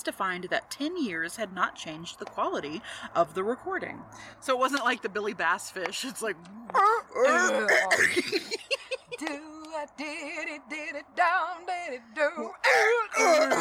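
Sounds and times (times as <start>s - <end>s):
speech: 0.0s - 13.5s
person laughing: 6.8s - 9.3s
raspy coughs: 7.4s - 9.0s, 12.6s - 13.5s.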